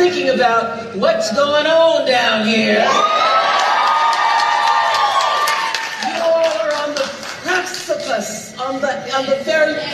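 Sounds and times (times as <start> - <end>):
speech: 0.2 - 3.4, 8.2 - 9.9
whoops from a crowd: 2.8 - 6.1
large crowd cheering and shouting: 2.8 - 6.4
scattered clapping: 3.6 - 8.3.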